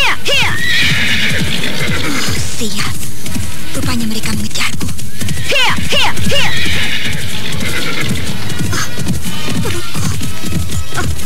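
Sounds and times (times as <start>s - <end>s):
horse whinnying: 0.0s - 2.5s, 5.1s - 10.3s
ridden horse galloping fast: 0.0s - 11.2s.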